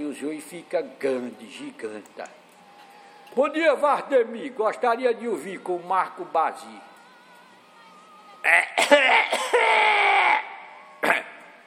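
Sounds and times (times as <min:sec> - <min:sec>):
speech: 0:00.1 - 0:02.4, 0:03.3 - 0:06.9, 0:08.4 - 0:09.2
person clearing throat to warm up the voice: 0:08.5 - 0:11.4.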